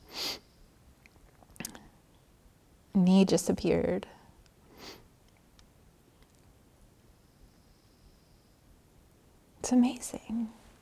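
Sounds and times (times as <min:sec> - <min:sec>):
person sniffling: 0:00.0 - 0:00.4
quiet hiss: 0:00.0 - 0:10.8
speech: 0:03.0 - 0:04.2, 0:09.7 - 0:10.6.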